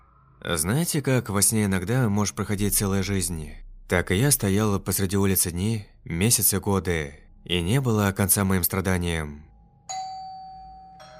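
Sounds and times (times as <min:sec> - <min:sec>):
speech: 0:00.4 - 0:10.0
electronic doorbell ringing at a front door: 0:09.9 - 0:11.1.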